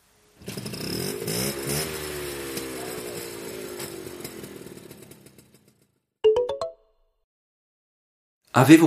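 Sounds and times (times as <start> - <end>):
red Vespa scooter engine revving: 0.0 - 5.8
speech: 8.6 - 8.8.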